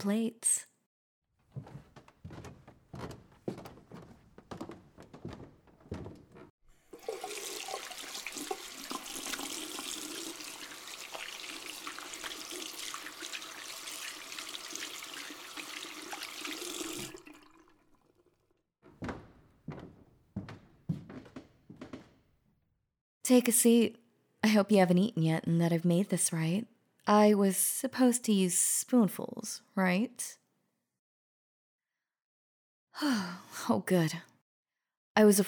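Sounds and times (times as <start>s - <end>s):
speech: 0.0s - 0.7s, 23.4s - 30.4s, 33.0s - 34.3s, 35.2s - 35.4s
running tap water at a sink while hands are washed: 6.8s - 18.4s.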